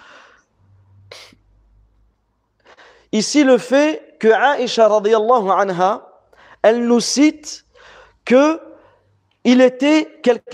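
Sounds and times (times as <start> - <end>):
person sneezing: 1.1 - 1.4
speech: 3.1 - 7.6, 8.3 - 8.7, 9.4 - 10.5.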